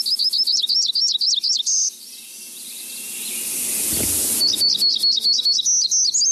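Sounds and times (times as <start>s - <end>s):
hermit warbler singing: 0.0s - 6.3s
rushing hiss: 2.8s - 5.3s.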